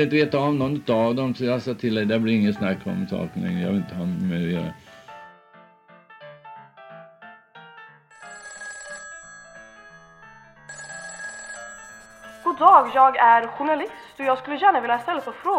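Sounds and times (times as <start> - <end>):
speech: 0.0 - 4.8, 12.6 - 15.5
telephone ringing with a melodic electronic ringtone: 8.1 - 13.5.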